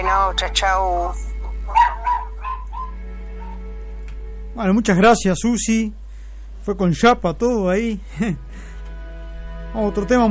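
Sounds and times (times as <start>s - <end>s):
steady low hum: 0.0s - 10.2s
speech: 0.2s - 1.8s, 4.6s - 6.0s, 6.6s - 8.7s, 9.7s - 10.2s
dog barking excitedly: 1.7s - 3.6s.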